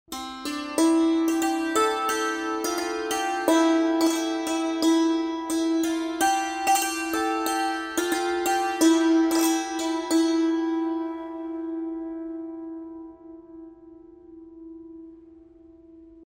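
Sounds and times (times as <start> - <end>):
santoor playing at 90 bpm: 0.1 - 15.4.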